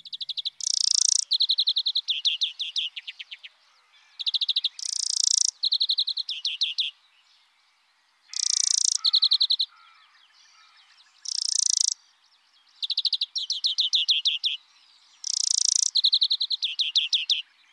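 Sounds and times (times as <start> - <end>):
European greenfinch song of rolling trills and nasal buzzes: 0.0 - 17.7.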